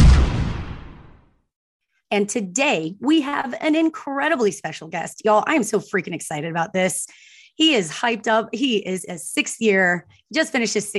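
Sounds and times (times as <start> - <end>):
cannon firing: 0.0 - 1.2
speech: 2.1 - 10.9.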